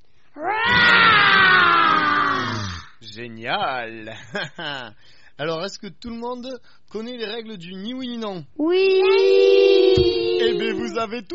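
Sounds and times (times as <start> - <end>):
children imitating a lion's growl: 0.4 - 2.9, 8.7 - 10.9
speech: 3.2 - 11.3
laughter: 4.1 - 5.0.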